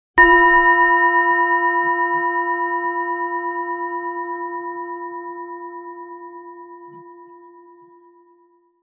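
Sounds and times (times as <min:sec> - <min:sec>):
planetary singing bowl struck with mallet: 0:00.2 - 0:08.3.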